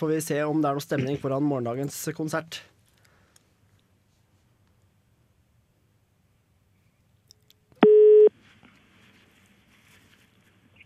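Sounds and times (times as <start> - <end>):
speech: 0.0 - 2.8
telephone ringing tone: 7.8 - 8.3.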